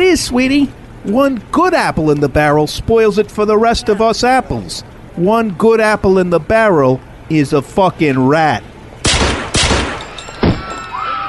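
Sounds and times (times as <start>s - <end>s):
low hiss: 0.0s - 10.4s
speech: 0.2s - 8.7s
gunshots: 9.0s - 10.8s.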